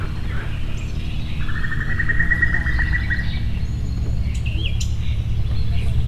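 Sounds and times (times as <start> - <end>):
common cuckoo calling in Tiszababolna: 0.0 - 6.0.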